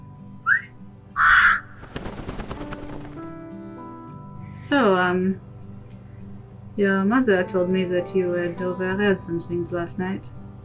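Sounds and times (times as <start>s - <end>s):
crow cawing: 1.2s - 3.2s
speech: 4.6s - 5.5s, 6.8s - 10.4s.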